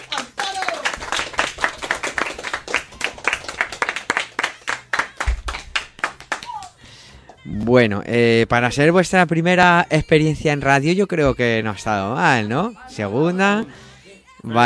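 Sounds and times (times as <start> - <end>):
group of students applauding: 0.0 - 6.8
speech: 7.6 - 13.8, 14.4 - 14.6.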